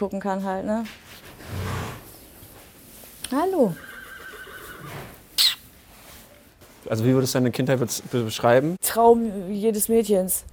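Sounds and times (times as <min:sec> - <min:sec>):
speech: 0:00.0 - 0:01.7, 0:03.3 - 0:03.9, 0:06.8 - 0:10.5
horse neighing in a stable: 0:03.6 - 0:05.6.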